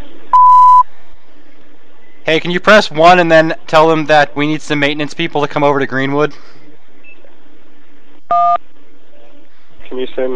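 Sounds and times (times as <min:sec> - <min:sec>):
faint room noise: 0:00.0 - 0:10.3
voicemail recording electronic beep tone: 0:00.3 - 0:00.8
speech: 0:02.3 - 0:06.6, 0:09.9 - 0:10.3.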